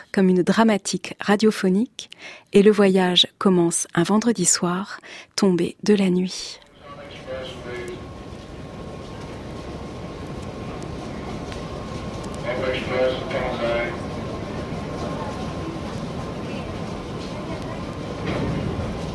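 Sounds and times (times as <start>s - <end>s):
speech: 0.2s - 6.7s
New York subway train running with rumble and thin whine: 6.7s - 19.1s.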